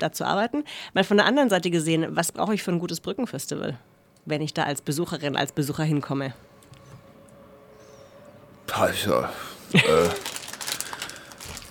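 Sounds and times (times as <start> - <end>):
speech: 0.0 - 6.5, 8.7 - 10.3
plastic bag rustling and crinkling: 9.7 - 11.6.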